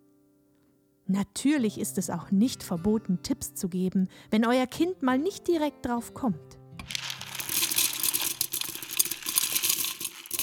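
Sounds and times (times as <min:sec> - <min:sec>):
speech: 0:01.1 - 0:06.6
dry uncooked pasta shaken: 0:06.9 - 0:10.4.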